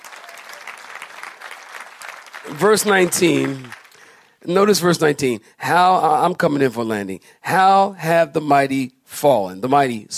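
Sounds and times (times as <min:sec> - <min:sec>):
audience clapping hands: 0:00.0 - 0:04.5
speech: 0:02.4 - 0:03.8, 0:04.4 - 0:10.1.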